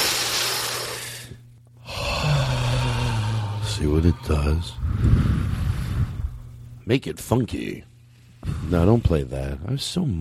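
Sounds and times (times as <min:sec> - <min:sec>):
person taking a deep breath with a long noisy inhale and breathy exhale: 0:00.8 - 0:03.8, 0:04.8 - 0:06.5
speech: 0:03.8 - 0:05.4, 0:06.9 - 0:10.1.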